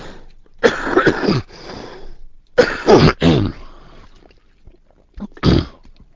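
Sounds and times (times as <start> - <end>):
person coughing raspy coughs: 0.6 - 1.5, 2.6 - 3.6, 5.2 - 5.8.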